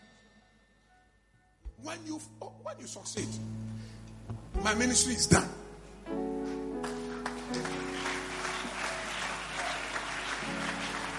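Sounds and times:
speech: 1.8s - 3.7s, 4.6s - 6.6s
crowd clapping: 6.8s - 11.1s.

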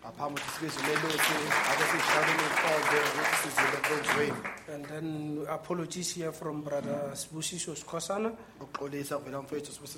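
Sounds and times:
crowd applauding: 0.2s - 4.7s
speech: 0.2s - 9.9s
overlapping voices: 0.3s - 4.7s.

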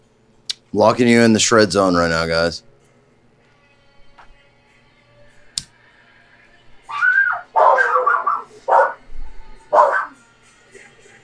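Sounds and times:
speech: 0.7s - 2.7s
dogs barking and yelping: 6.9s - 10.2s.

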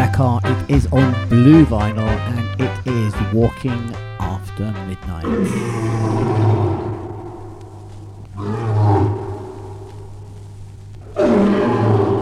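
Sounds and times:
steady low hum: 0.0s - 12.1s
speech: 0.2s - 6.7s
lion roaring: 5.2s - 10.1s, 11.0s - 12.1s.

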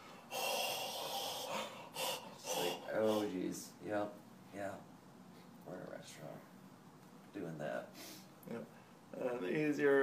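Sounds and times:
hissing breaths sucked in through the mouth to cool hot food: 0.0s - 3.3s
speech: 3.0s - 4.9s, 5.6s - 6.5s, 7.3s - 10.0s.

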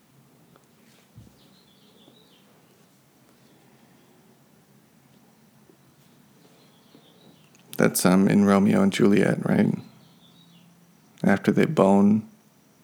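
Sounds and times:
birds chirping: 0.0s - 12.8s
hushed outdoor ambience: 0.0s - 12.8s
speech: 7.8s - 9.8s, 11.3s - 12.3s.

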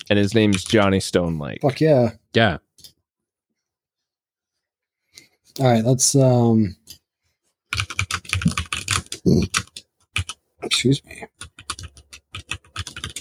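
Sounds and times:
speech: 0.1s - 2.9s, 5.6s - 7.0s, 9.3s - 9.6s, 10.6s - 11.4s
typing on a mechanical keyboard: 0.4s - 0.9s, 7.7s - 10.4s, 11.4s - 13.1s.

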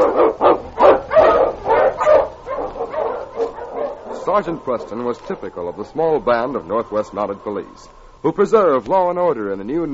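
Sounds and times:
husky sled dog barking with yips and woofs: 0.0s - 4.8s
speech: 4.3s - 9.9s.

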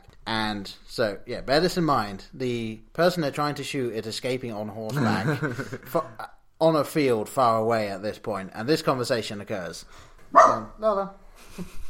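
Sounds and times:
speech: 0.3s - 11.8s
laughter: 4.9s - 6.2s
dog barking: 10.3s - 10.7s
dog yipping: 10.4s - 10.7s.

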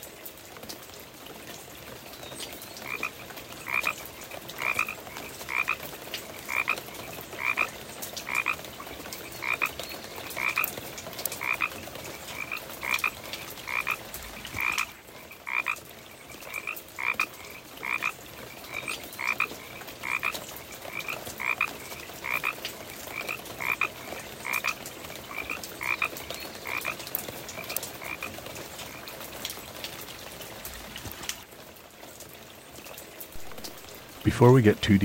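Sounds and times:
rain falling outside a house: 0.0s - 35.0s
water drips: 0.0s - 35.0s
Pacific chorus frogs croaking: 2.6s - 30.0s
speech: 34.3s - 35.0s.

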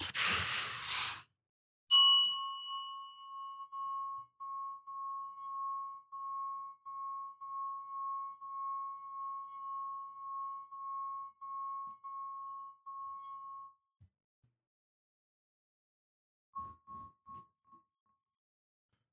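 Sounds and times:
deep breath: 0.0s - 1.3s
clear ringing chime: 1.9s - 13.8s.

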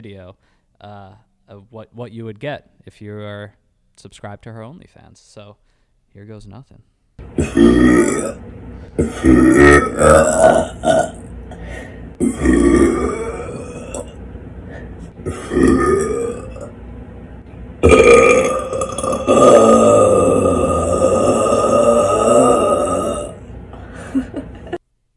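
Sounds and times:
speech: 0.0s - 11.1s
deep loud burps: 7.2s - 14.2s, 15.2s - 16.8s, 17.8s - 23.5s.

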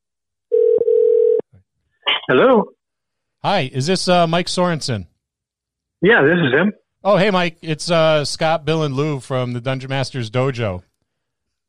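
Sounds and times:
outgoing phone call ringing tone: 0.5s - 1.4s
speech: 2.3s - 2.8s, 3.4s - 5.1s, 6.0s - 10.9s.

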